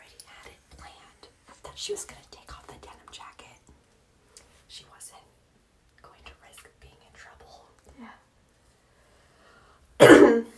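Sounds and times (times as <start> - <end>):
speech: 1.8 - 2.4
raspy throat-clearing cough: 10.0 - 10.5.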